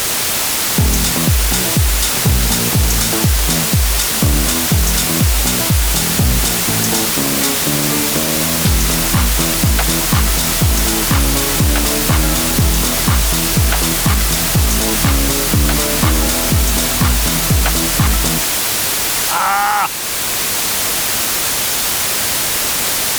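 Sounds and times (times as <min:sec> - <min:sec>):
steady electronic hiss from a tone generator: 0:00.0 - 0:23.1
thumping beat: 0:00.8 - 0:18.4
low notes: 0:00.8 - 0:18.5.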